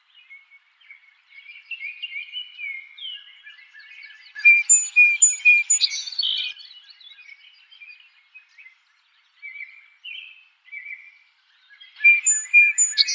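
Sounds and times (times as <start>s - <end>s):
song sparrow singing: 1.4s - 8.8s, 11.8s - 13.1s.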